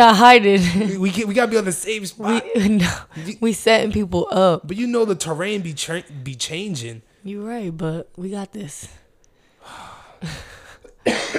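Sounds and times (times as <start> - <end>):
speech: 0.0 - 9.0, 9.6 - 11.3
person coughing: 10.8 - 11.3.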